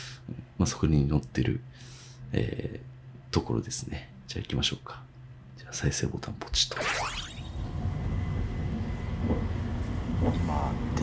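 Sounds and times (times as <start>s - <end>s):
speech: 0.6s - 7.1s, 10.2s - 11.0s
high whine in a train cabin: 6.5s - 11.0s
limited express train cabin rumble: 7.7s - 11.0s
voices in a train cabin: 10.2s - 11.0s.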